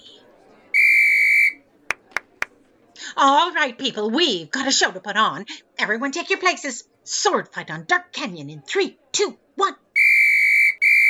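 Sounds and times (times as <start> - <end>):
faint murmur: 0.0 - 11.0
shrill whistle blast: 0.8 - 1.6, 10.0 - 11.0
sharp clacks: 1.9 - 2.5
speech: 3.2 - 9.8.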